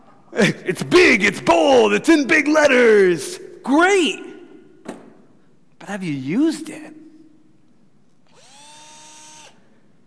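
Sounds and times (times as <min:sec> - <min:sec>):
speech: 0:00.3 - 0:04.3, 0:05.9 - 0:07.0
power drill spinning with a high-pitched buzz: 0:08.3 - 0:09.7.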